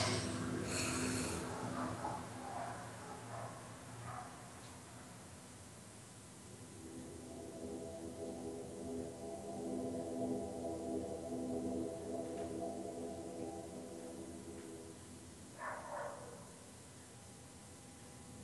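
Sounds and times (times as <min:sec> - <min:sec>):
deep inhale and exhale: 0:00.0 - 0:01.7
low steady hum: 0:00.0 - 0:04.3, 0:04.9 - 0:18.4.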